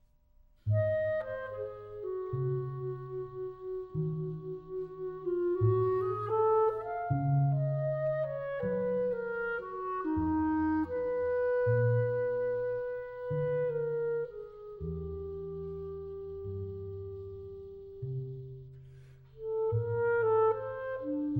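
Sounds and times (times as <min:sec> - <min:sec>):
clarinet playing slowly: 0:00.6 - 0:21.3.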